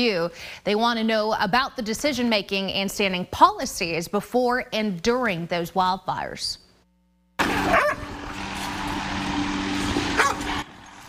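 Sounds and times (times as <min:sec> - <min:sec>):
speech: 0:00.0 - 0:06.6
steady rushing outdoor noise: 0:07.4 - 0:11.0
cadaver search dog barking and whimpering during search and rescue after wildfires: 0:07.6 - 0:08.2, 0:10.1 - 0:10.6.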